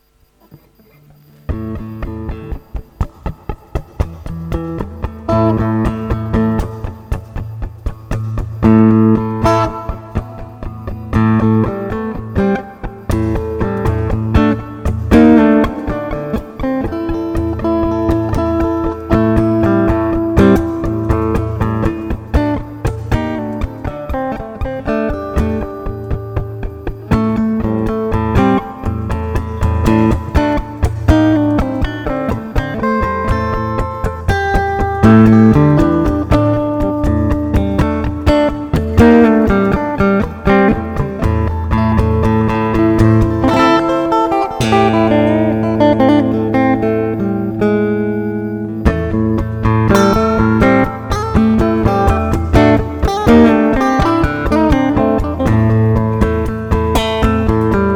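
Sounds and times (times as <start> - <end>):
instrumental blues: 0.1 - 57.9.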